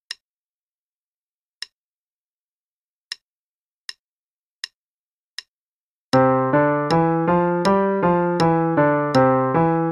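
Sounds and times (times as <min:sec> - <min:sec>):
C Major five-finger pattern: 0:06.2 - 0:09.9.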